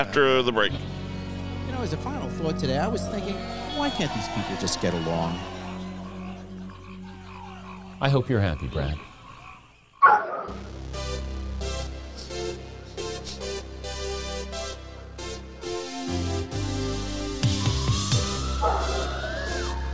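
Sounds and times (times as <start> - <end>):
speech: 0.0 - 0.9, 1.7 - 5.6, 8.0 - 9.1
steady droning background: 0.0 - 17.4
dog barking over telephone feed: 10.0 - 10.6
dog whining: 18.6 - 19.8.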